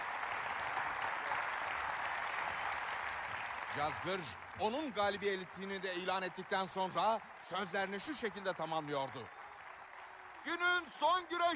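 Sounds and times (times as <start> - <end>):
large crowd applauding: 0.0 - 11.5
speech: 3.7 - 9.4, 10.4 - 11.5.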